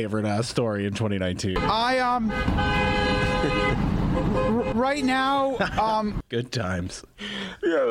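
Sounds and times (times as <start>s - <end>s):
busy road noise: 0.0s - 7.6s
speech: 0.0s - 7.8s
car horn honking in street traffic: 1.6s - 5.3s.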